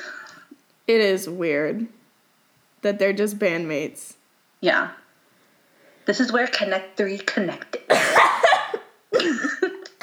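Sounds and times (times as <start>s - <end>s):
speech: 0.9s - 2.0s, 2.8s - 5.0s, 6.1s - 7.9s
throaty coughing: 7.9s - 10.0s.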